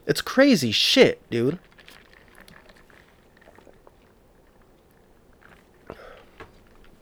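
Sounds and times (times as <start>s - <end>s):
gulps of water: 0.0s - 7.0s
speech: 0.1s - 1.7s
person drinking water with wet mouth clicks: 0.2s - 7.0s.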